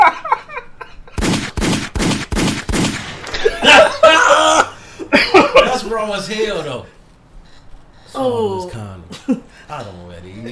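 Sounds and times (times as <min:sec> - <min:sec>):
people laughing: 0:00.0 - 0:01.2, 0:03.2 - 0:06.1
gunshot sound effect: 0:01.2 - 0:04.0.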